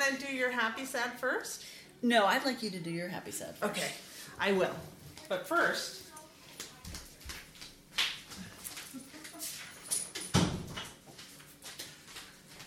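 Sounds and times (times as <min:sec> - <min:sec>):
speech: 0:00.1 - 0:06.0
household rustling and shuffling: 0:03.8 - 0:12.6
door in a house shut with a solid thud: 0:10.2 - 0:11.0.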